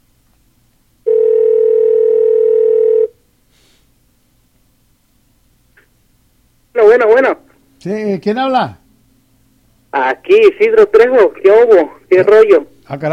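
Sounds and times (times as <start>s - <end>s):
telephone ringing tone while waiting for an answer: 1.0s - 3.2s
speech: 7.0s - 8.8s, 10.0s - 13.1s.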